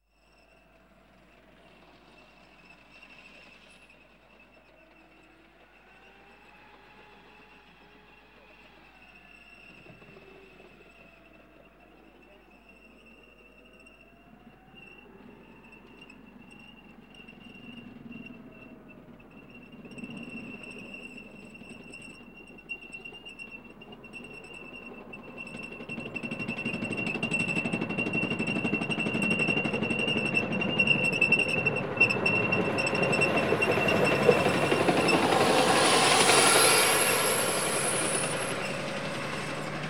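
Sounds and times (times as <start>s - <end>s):
M1 tank passing by: 19.3s - 39.8s.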